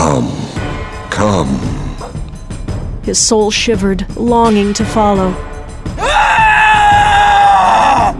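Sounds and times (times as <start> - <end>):
speech: 1.2 - 2.2, 3.1 - 6.1
man screaming in rage: 6.0 - 8.1.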